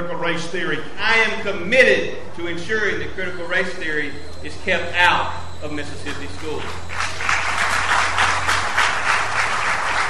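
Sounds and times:
speech: 0.0 - 7.0
low hum: 0.8 - 10.0
large crowd applauding at a county fair: 6.4 - 10.0.

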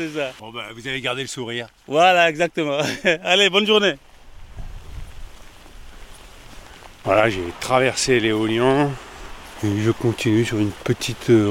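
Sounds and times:
speech: 0.0 - 4.1, 7.0 - 11.4
steady rain pattering on surfaces: 0.0 - 11.4
laughter: 2.8 - 3.3.

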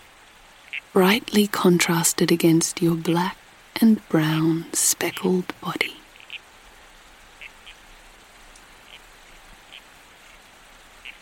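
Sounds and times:
soft steady hiss of night ambience: 0.0 - 11.2
speech: 0.9 - 6.0
male red-crowned toadlet croaking: 4.5 - 6.5, 7.3 - 7.9, 8.8 - 10.4, 11.0 - 11.2.

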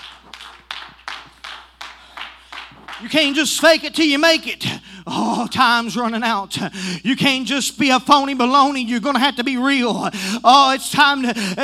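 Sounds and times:
group clapping in rhythm in a reverberant room: 0.0 - 3.7
speech: 3.0 - 11.6.

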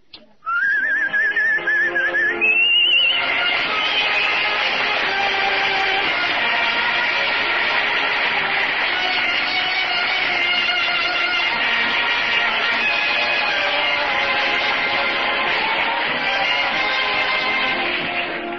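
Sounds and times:
person whistling a song melody: 0.4 - 4.4
full band music from a record on a jukebox: 0.6 - 18.5.

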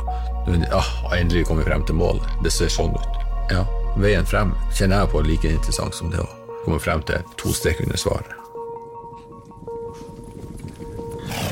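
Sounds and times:
speech: 0.4 - 8.5
horses clip-clopping: 9.0 - 11.5.

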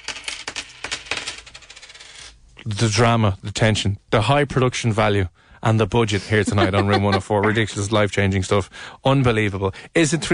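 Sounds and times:
coins clinking and dropping onto a hard surface: 0.0 - 2.3
speech: 2.6 - 10.3
laughter: 6.2 - 7.8.

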